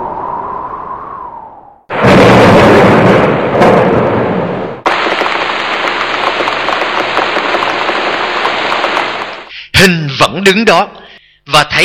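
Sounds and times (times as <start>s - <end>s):
heavy spring rain pouring down: 1.9s - 9.5s
thunder: 1.9s - 9.5s
speech: 10.5s - 11.0s, 11.5s - 11.8s.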